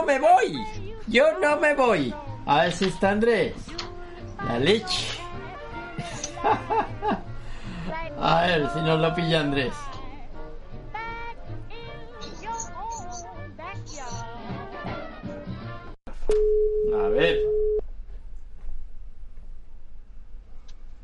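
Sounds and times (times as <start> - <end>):
speech: 0.0 - 3.8, 4.4 - 5.2, 6.4 - 7.2, 7.9 - 9.9
laughter: 6.0 - 7.3
telephone busy tone after dropped call: 16.4 - 17.8.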